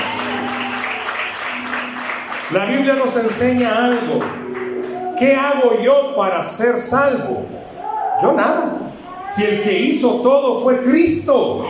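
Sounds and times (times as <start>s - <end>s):
audience applauding: 0.0s - 5.3s
speech: 2.5s - 4.4s, 5.2s - 11.6s.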